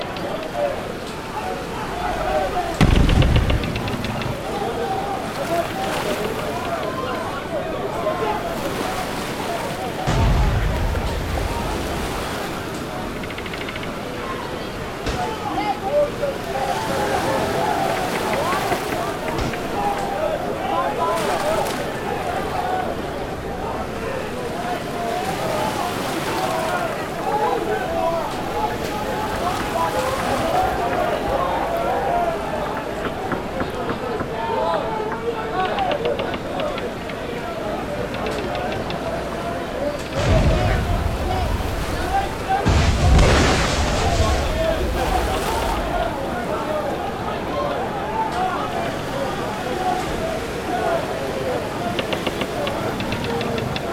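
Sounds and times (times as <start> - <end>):
sea in a pirate ambience: 0.0 - 53.9
gunshots in a pirate ambience: 2.3 - 5.9, 10.1 - 13.0, 40.2 - 45.0.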